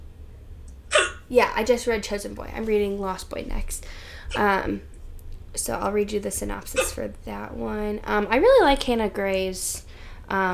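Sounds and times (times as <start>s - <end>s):
hiccup: 0.9s - 1.3s, 6.8s - 7.0s
speech: 1.3s - 4.9s, 5.5s - 10.5s.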